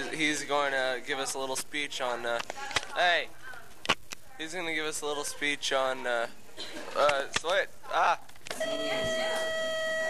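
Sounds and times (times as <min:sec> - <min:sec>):
speech: 0:00.2 - 0:03.4, 0:04.4 - 0:09.8
electronic doorbell ringing: 0:08.6 - 0:10.0.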